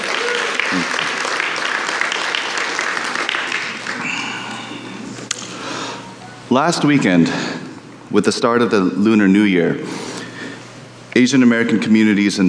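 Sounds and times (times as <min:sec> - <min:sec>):
audience applause: 0:00.0 - 0:04.9
speech: 0:00.7 - 0:01.0, 0:06.6 - 0:10.1, 0:11.2 - 0:12.4.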